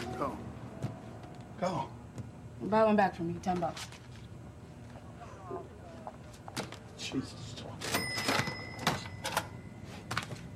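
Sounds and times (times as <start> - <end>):
speech: 0.2 - 0.5, 1.6 - 2.0, 2.6 - 4.0, 7.1 - 7.5
cash register drawer closing: 7.8 - 9.6
cash register chime: 7.8 - 10.2.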